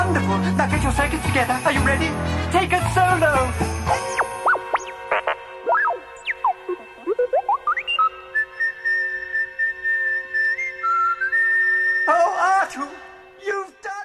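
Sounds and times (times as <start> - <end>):
speech: 0.2 - 3.7
whistled Christmas song melody: 2.3 - 13.4.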